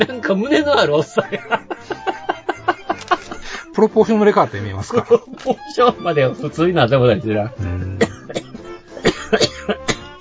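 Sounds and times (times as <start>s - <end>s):
speech: 0.0s - 1.6s, 3.8s - 7.8s
laughter: 0.0s - 3.7s, 4.4s - 6.2s
person coughing and choking: 7.6s - 10.2s.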